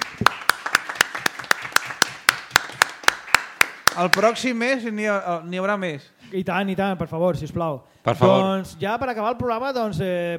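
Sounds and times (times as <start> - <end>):
one or two people clapping for a guest: 0.0 - 4.6
speech: 4.0 - 10.3.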